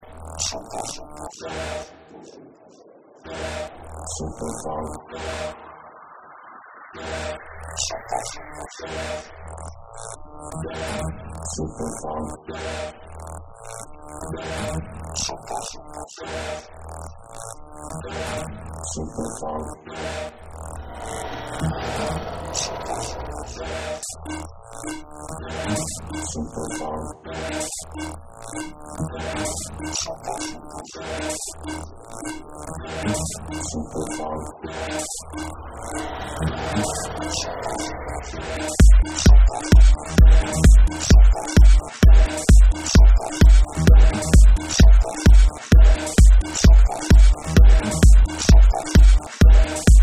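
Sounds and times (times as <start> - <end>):
funk remix bass: 38.8 - 50.0.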